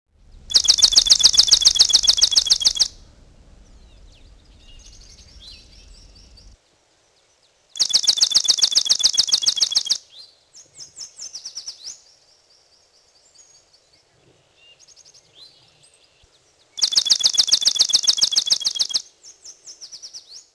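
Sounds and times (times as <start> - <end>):
swamp sparrow singing: 0.3 - 6.6, 7.8 - 10.0, 16.8 - 20.3.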